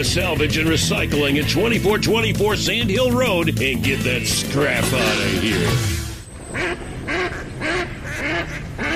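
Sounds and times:
speech: 0:00.0 - 0:06.8
ducks quacking: 0:04.5 - 0:08.9.

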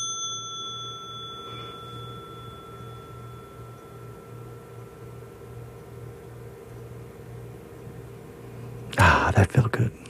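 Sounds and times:
mindfulness bell struck and ringing: 0:00.0 - 0:06.2
low steady hum: 0:00.0 - 0:10.0
speech: 0:09.3 - 0:10.0.

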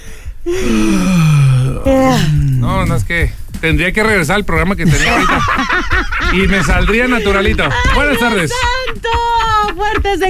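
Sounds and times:
speech: 0:00.4 - 0:01.2, 0:01.8 - 0:10.2
person imitating a yawn: 0:00.4 - 0:02.7
laughter: 0:04.8 - 0:10.2.

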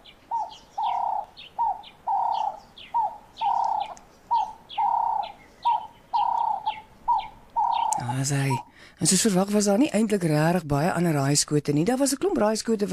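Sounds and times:
Cape turtle dove cooing: 0:00.0 - 0:08.7
birds chirping: 0:00.0 - 0:09.8
speech: 0:08.3 - 0:12.9.

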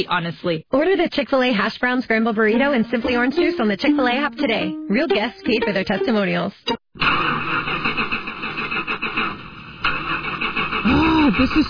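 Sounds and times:
speech: 0:00.0 - 0:07.2, 0:11.0 - 0:11.6
car engine cranking without starting, with high thin whine: 0:07.0 - 0:11.6.

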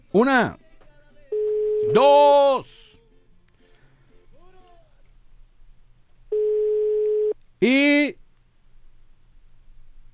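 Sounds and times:
faint low hum: 0:00.0 - 0:10.1
speech: 0:00.1 - 0:00.6, 0:01.8 - 0:02.8, 0:07.6 - 0:08.2
ringback tone of an outgoing telephone call: 0:01.3 - 0:02.6, 0:06.3 - 0:07.4.

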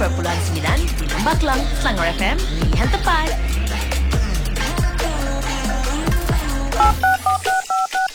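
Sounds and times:
music: 0:00.0 - 0:08.1
speech: 0:01.4 - 0:03.6
telephone keypad dialing tones: 0:06.8 - 0:08.1.

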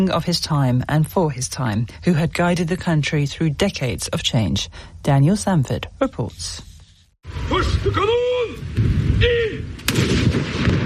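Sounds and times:
speech: 0:00.0 - 0:08.2
cannons firing a gun salute: 0:08.7 - 0:10.8.

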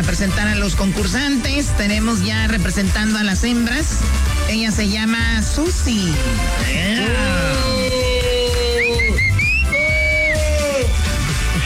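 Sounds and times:
speech: 0:00.1 - 0:07.8
noisy crowd: 0:06.0 - 0:11.6
several people wolf-whistling at a contestant: 0:07.2 - 0:11.0.

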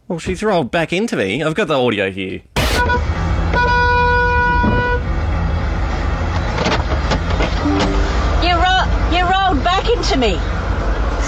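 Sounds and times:
speech: 0:00.1 - 0:03.7, 0:10.0 - 0:10.6
car horn honking: 0:02.6 - 0:05.1, 0:07.6 - 0:08.6
constant rumble of car engine and road noise: 0:02.6 - 0:11.2.

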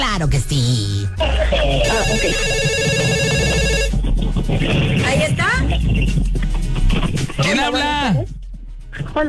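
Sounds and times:
speech: 0:00.1 - 0:03.3, 0:04.3 - 0:08.3, 0:08.9 - 0:09.2
laughter: 0:01.2 - 0:02.4
electronic telephone ringtone for an incoming call: 0:01.8 - 0:04.0.

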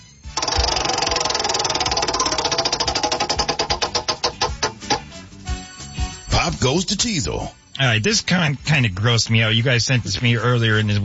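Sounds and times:
prize wheel spun to pick a topic ticking: 0:00.4 - 0:05.1
speech: 0:06.4 - 0:11.0.

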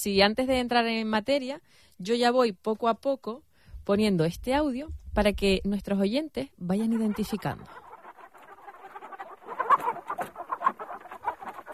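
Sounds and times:
speech: 0:00.0 - 0:07.8
many chickens clucking in a crowded henhouse: 0:06.8 - 0:11.7.

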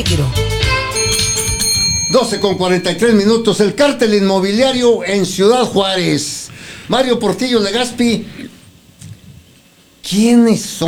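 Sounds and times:
speech: 0:00.0 - 0:00.4, 0:02.1 - 0:08.5, 0:10.0 - 0:10.8
bell sound effect ringing: 0:00.6 - 0:05.9.

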